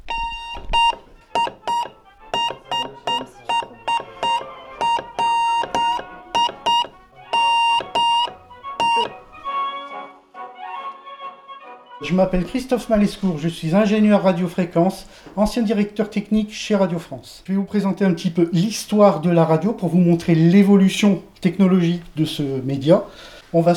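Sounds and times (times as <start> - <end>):
Morse code beeps in a bright buzzy tone: 0.0 - 9.5
speech: 12.1 - 23.7.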